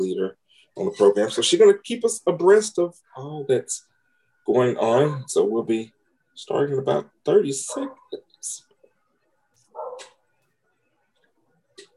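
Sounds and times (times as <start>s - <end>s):
speech: 0.0s - 3.9s, 4.5s - 8.7s
dog barking in a quiet room: 4.9s - 5.4s, 7.6s - 8.2s, 9.7s - 10.2s.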